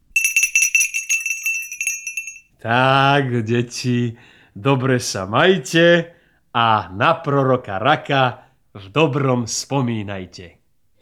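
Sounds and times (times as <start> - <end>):
small hand bell from a manor house ringing: 0.0 - 2.5
speech: 2.6 - 11.0.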